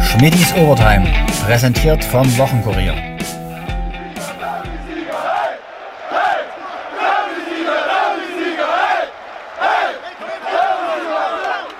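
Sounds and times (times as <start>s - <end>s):
speech: 0.2s - 3.1s
large stadium crowd of football fans roaring and chanting: 3.9s - 11.7s.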